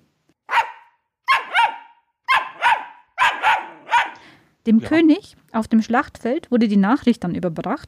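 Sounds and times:
puppy barking in short high yips: 0.5s - 4.2s
speech: 4.7s - 7.8s.

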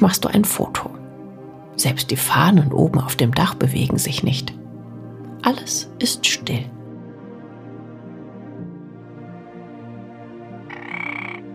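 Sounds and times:
speech: 0.0s - 0.9s, 1.8s - 4.6s, 5.4s - 6.8s
steady soft music: 0.0s - 11.5s
frog croaking in short buzzy bursts: 10.6s - 11.5s.

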